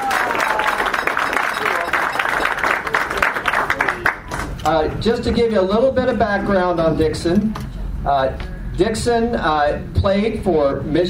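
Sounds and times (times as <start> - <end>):
room full of people applauding: 0.0 - 4.6
speech: 4.7 - 11.0.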